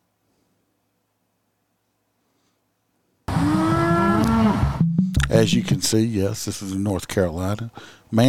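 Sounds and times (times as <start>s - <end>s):
cow mooing: 3.3s - 4.8s
speech: 5.3s - 8.2s.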